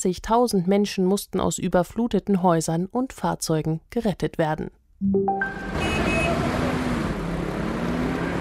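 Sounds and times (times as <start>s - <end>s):
speech: 0.0s - 6.4s
short tonal beeps: 5.0s - 6.3s
road traffic of petrol and diesel cars: 5.3s - 8.4s.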